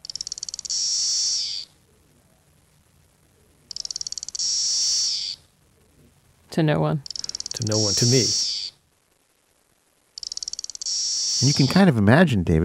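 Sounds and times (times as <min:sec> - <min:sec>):
single cicada singing: 0:00.0 - 0:01.8, 0:03.7 - 0:05.5, 0:07.1 - 0:08.8, 0:10.2 - 0:11.8
speech: 0:06.6 - 0:08.4, 0:11.4 - 0:12.6.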